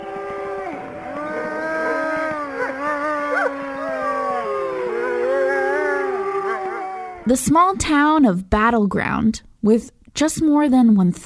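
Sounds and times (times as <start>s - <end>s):
several wolves howling in chorus: 0.0s - 7.3s
speech: 7.3s - 11.2s.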